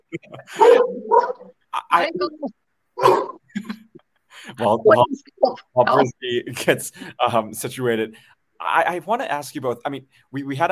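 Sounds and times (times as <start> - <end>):
speech: 0.1 - 1.3, 1.9 - 3.2, 4.6 - 10.7
dog barking and yelping: 0.5 - 1.6, 3.0 - 3.5.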